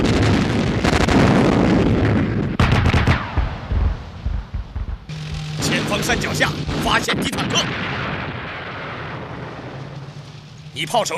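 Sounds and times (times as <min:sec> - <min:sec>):
artillery battery firing a rapid-fire volley: 0:00.0 - 0:10.7
speech: 0:06.1 - 0:07.9, 0:10.8 - 0:11.1.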